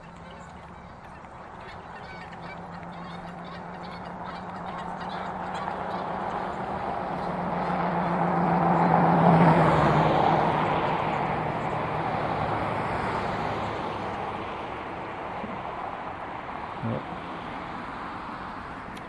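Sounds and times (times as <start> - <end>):
geese honking: 0.0 - 8.2
passing road traffic with tire and engine noise: 0.0 - 19.0.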